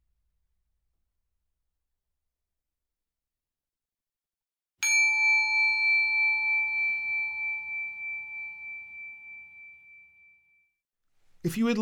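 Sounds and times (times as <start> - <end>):
small bell ringing: 4.8 - 10.6
speech: 11.4 - 11.8.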